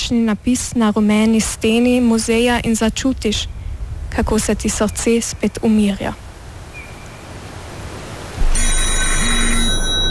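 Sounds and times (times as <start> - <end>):
steady hiss: 0.0 - 10.0
speech: 0.1 - 6.2
telephone ringing with bright metallic trill: 8.4 - 10.0.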